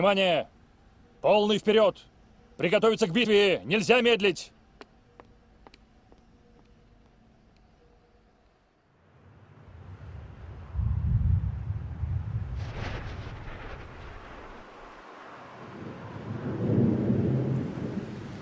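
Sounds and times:
speech: 0.0s - 0.6s, 1.2s - 4.6s
deep rolling thunder in a rainstorm: 9.6s - 18.4s
soft steady hiss of rain: 9.7s - 18.4s.

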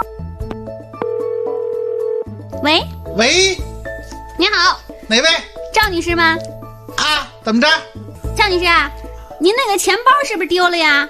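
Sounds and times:
telephone ringing tone while placing a call: 1.0s - 2.4s
speech: 2.6s - 3.7s, 4.4s - 11.0s.

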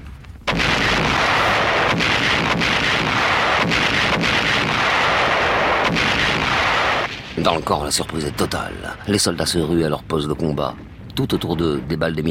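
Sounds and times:
artillery shells exploding in a barrage on the Dien Bien Phu camp: 0.4s - 10.2s
speech: 7.4s - 12.2s.

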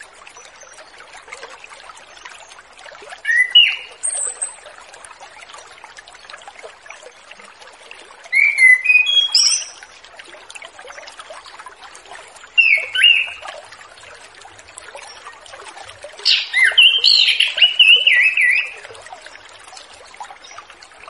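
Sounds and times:
orange-headed thrush singing whistled phrases with thin trills: 3.3s - 3.9s, 8.4s - 9.7s, 12.6s - 13.4s, 16.2s - 18.8s.

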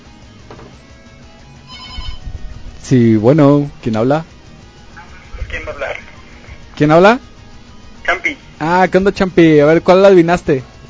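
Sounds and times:
telephone ring tone through a noisy phone line: 1.6s - 2.2s
steady phone line hiss: 1.6s - 2.3s
speech: 2.8s - 4.3s, 6.8s - 7.3s, 8.6s - 10.7s.

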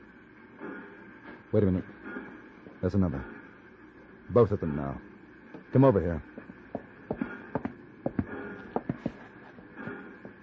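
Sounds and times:
low hum: 0.0s - 10.4s
speech: 1.5s - 2.0s, 2.8s - 3.4s, 4.3s - 5.1s, 5.7s - 6.4s
horse hooves clip-clopping at a trot: 6.4s - 9.9s.

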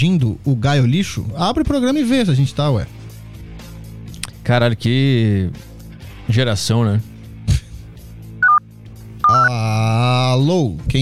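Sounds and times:
speech: 0.0s - 3.0s, 4.5s - 5.7s, 6.3s - 7.1s, 9.5s - 11.0s
mobile phone keypad tones from accidentally touching the phone during a call: 9.2s - 9.5s.

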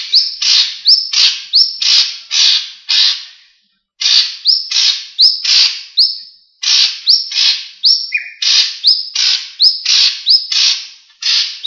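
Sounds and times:
leafbird song with scratchy notes and upslurred whistles: 0.0s - 11.6s.

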